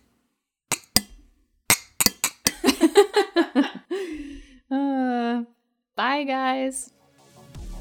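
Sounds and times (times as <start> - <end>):
glasses clinking in a toast: 0.7 - 1.1, 1.7 - 2.9
giggling laughter: 2.6 - 3.9
speech: 6.1 - 6.9.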